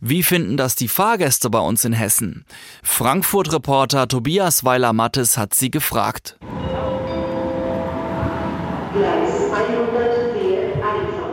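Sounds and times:
speech: 0.0 - 6.8
crowd noise in a busy main train station: 6.4 - 11.2
tonal train sounds: 6.4 - 11.3.

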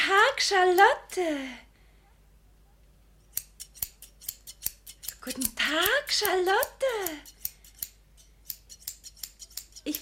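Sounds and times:
speech: 0.3 - 1.7, 5.2 - 7.3, 9.8 - 10.0
scissors snipping through strips of fabric: 3.3 - 10.0.

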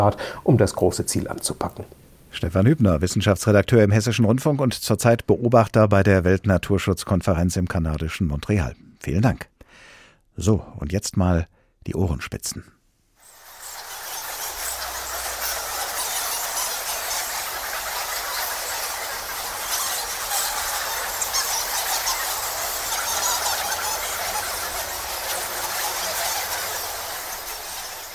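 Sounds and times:
speech: 0.0 - 12.8
many bats squeaking and chirping: 13.2 - 28.1.

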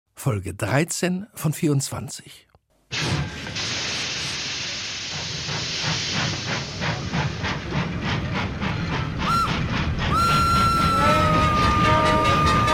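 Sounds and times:
speech: 0.2 - 3.7
hissing steam from a train: 3.0 - 12.7
train rumbling and clattering along the rails: 3.0 - 12.7
long train whistle or horn: 9.2 - 12.7.

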